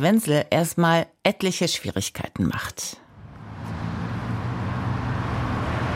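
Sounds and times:
speech: 0.0 - 3.0
dense road traffic at a busy five-lane roundabout in Berlin: 3.1 - 5.9.

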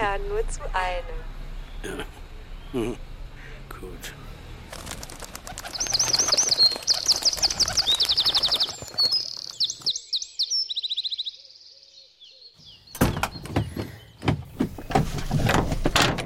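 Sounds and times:
speech: 0.2 - 3.1, 3.8 - 4.3
wren singing high trills and warbles: 1.5 - 3.5, 5.5 - 15.0
sharp clattering and knocking noises: 13.0 - 16.2.

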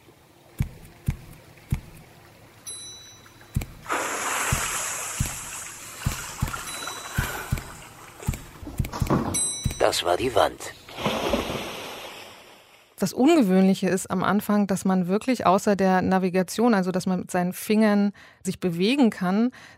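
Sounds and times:
rushing water: 0.0 - 13.0
soft knocks or footsteps: 0.6 - 2.1, 3.5 - 3.9, 4.5 - 10.0
speech: 9.9 - 10.8, 13.0 - 19.7.

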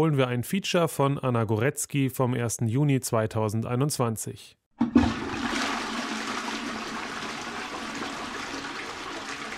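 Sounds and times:
speech: 0.0 - 5.6
toilet flushing: 4.8 - 9.5.

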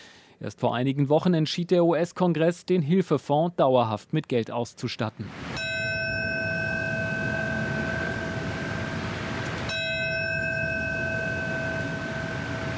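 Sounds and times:
speech: 0.4 - 5.5
low rumble: 5.3 - 12.7
large memorial bell tolling: 5.6 - 12.7.

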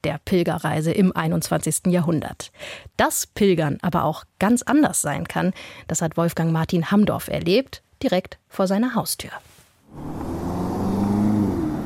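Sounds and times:
speech: 0.0 - 10.3
car traffic engine rumble in a busy city square in central Berlin: 9.9 - 11.8
faint tonal engine whine: 9.9 - 11.8.

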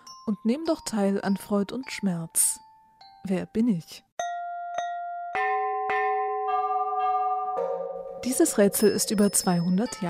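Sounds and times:
speech: 0.3 - 2.6, 3.2 - 4.3, 8.2 - 10.0
bell ringing: 4.2 - 10.0.

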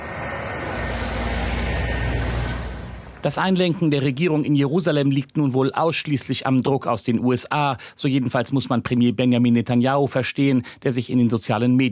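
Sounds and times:
heavy trucks driving past with road noise: 0.0 - 3.8
speech: 3.2 - 11.9.

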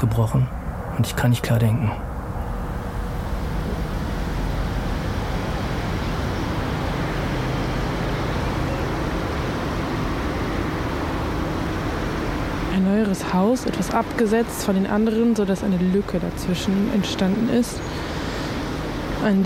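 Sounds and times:
speech: 0.0 - 2.1, 12.8 - 18.2, 19.2 - 19.4
distant car traffic: 0.0 - 19.4.

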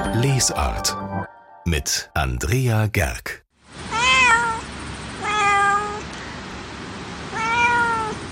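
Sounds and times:
speech: 0.2 - 1.0, 1.7 - 3.4
cat meowing: 3.9 - 6.1, 7.3 - 8.3.

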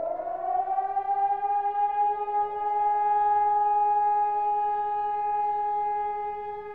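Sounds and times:
civil defense siren with steady tone: 0.0 - 6.7.

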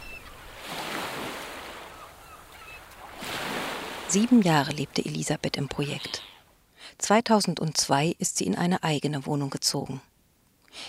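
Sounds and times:
sea waves washing onto a beach: 0.0 - 5.5
speech: 4.1 - 6.3, 7.0 - 10.1.

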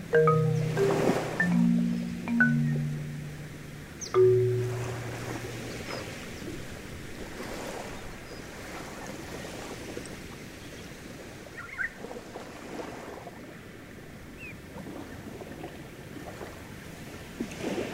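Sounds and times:
motorboat engine rumble along a coast: 0.0 - 8.3
wind: 0.0 - 17.9.

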